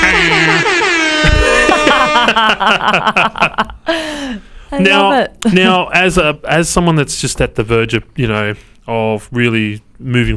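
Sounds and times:
air horn sound effect blasts: 0.0s - 2.8s
people chuckling: 0.0s - 4.0s
speech: 2.4s - 10.3s.

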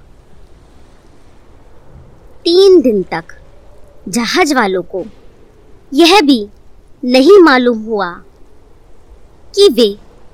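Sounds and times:
rumbling roar of rough stormy sea waves: 0.0s - 10.3s
strong gusting wind: 0.0s - 10.3s
speech: 2.4s - 3.4s, 4.0s - 5.2s, 5.9s - 8.3s, 9.5s - 10.0s.

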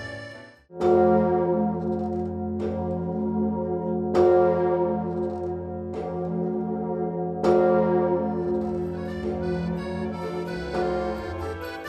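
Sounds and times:
Emmanuel bourdon bell of Notre-Dame Cathedral in Paris tolling: 0.7s - 11.6s.

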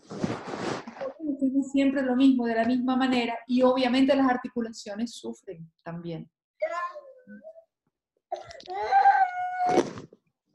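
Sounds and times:
speech: 1.5s - 7.5s, 8.3s - 10.0s
baby crying: 6.6s - 7.6s, 8.3s - 10.0s.

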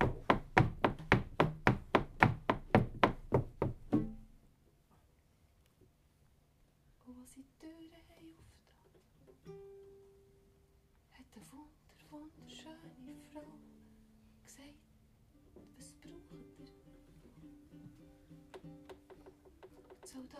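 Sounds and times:
knocking on the wooden door of a small hut at a forest edge: 0.0s - 4.1s.

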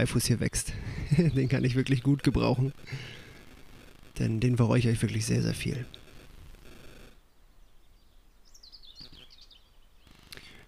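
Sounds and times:
speech: 0.0s - 3.2s, 4.2s - 6.0s
bird chirping: 0.0s - 3.3s, 7.2s - 10.6s
soft rain pattering heard from indoors: 0.0s - 6.4s
laughter: 0.9s - 1.9s.

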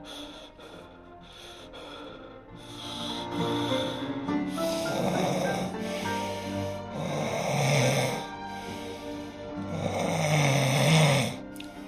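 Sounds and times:
sleeping man snoring heavily: 2.6s - 11.8s.

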